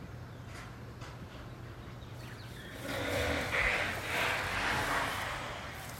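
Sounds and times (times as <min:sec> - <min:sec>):
faint distant construction sounds: 0:00.0 - 0:05.9
soft bird chirps: 0:00.0 - 0:05.9
low outdoor rumble: 0:02.6 - 0:05.9.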